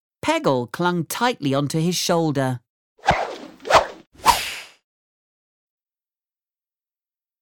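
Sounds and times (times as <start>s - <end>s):
speech: 0.2s - 2.6s
whooshes of someone swinging on a rope tied to a ship's mast: 3.0s - 4.8s.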